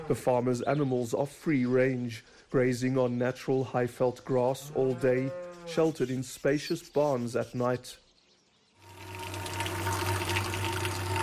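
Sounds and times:
speech: 0.1s - 8.0s
low mechanical hum: 8.8s - 11.2s
milk pouring into a container: 8.8s - 11.2s.

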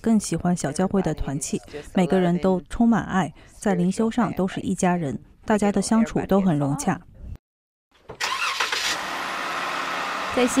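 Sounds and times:
speech: 0.0s - 7.1s, 10.4s - 10.5s
jeep engine cranking and starting: 8.1s - 10.5s.

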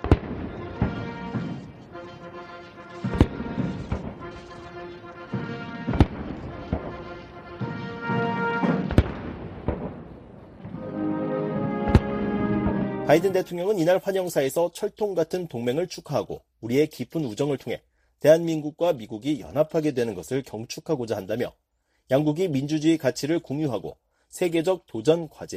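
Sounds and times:
cannon booms of a gun salute at an official welcome ceremony: 0.0s - 13.5s
sustained tonal background: 0.5s - 8.6s, 10.7s - 13.9s
speech: 13.1s - 25.5s.

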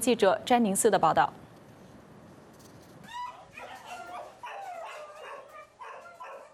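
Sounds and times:
speech: 0.0s - 1.4s
abandoned dogs barking and yelping in an animal shelter in Taiwan: 3.0s - 6.5s.

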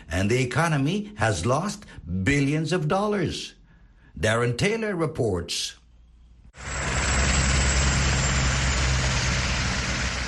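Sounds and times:
speech: 0.1s - 3.6s, 4.2s - 5.8s
idling trucks in stalled highway traffic: 6.6s - 10.2s.

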